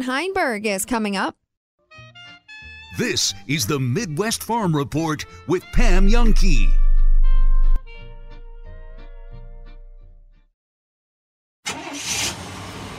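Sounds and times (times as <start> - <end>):
speech: 0.0 - 1.4, 3.0 - 6.8
short tonal jingle: 5.8 - 7.8.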